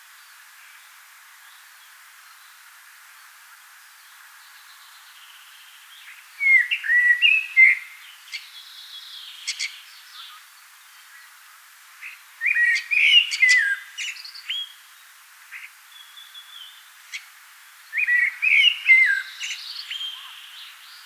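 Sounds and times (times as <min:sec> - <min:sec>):
faint bird chirps: 0:04.0 - 0:17.3, 0:17.9 - 0:21.0
common blackbird (Turdus merula) singing: 0:06.0 - 0:10.4, 0:12.4 - 0:14.7, 0:17.9 - 0:21.0.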